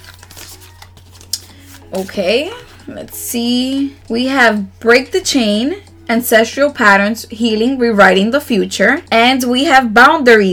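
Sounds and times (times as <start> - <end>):
affirmation card deck being shuffled: 0.0 - 3.2
speech: 1.9 - 10.5.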